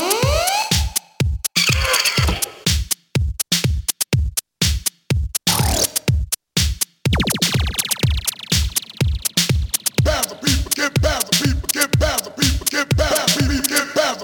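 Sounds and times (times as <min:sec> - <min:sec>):
electronic beat loops triggered from a keyboard music app: 0:00.0 - 0:14.0
sweeping electronic hits: 0:07.1 - 0:10.1.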